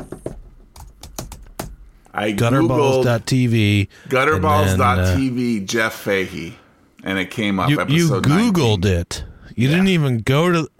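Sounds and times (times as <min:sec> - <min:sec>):
typing on a computer keyboard: 0:00.0 - 0:01.8
speech: 0:02.2 - 0:10.7.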